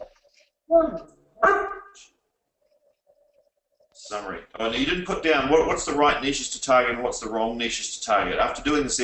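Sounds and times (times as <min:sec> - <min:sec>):
speech: 0:00.7 - 0:02.1, 0:04.1 - 0:09.0
dog barking: 0:01.4 - 0:02.1.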